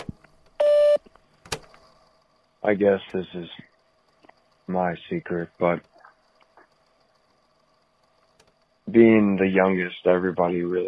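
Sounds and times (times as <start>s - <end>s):
faint clicks: 0.0s - 9.5s
voicemail recording tone beep: 0.6s - 1.0s
speech: 2.6s - 3.7s, 4.7s - 5.9s, 8.9s - 10.8s.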